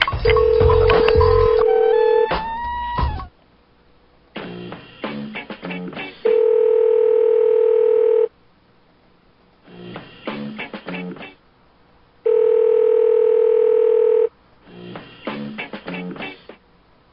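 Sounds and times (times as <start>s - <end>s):
telephone dialing beeps: 0.0s - 2.3s
telephone dial tone: 0.2s - 2.2s, 6.3s - 8.3s, 12.3s - 14.3s.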